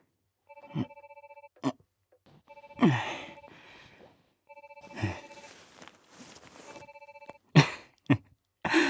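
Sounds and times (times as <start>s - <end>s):
smartphone ringing with an incoming call: 0.5s - 1.6s, 2.4s - 7.4s.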